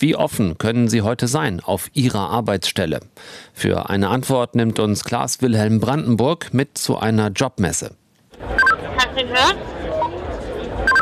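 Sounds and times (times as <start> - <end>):
speech: 0.0 - 8.5, 9.2 - 9.9
murmur of crowd chatter: 8.3 - 10.9
walkie-talkie double-tone electronic chirps: 8.6 - 8.8.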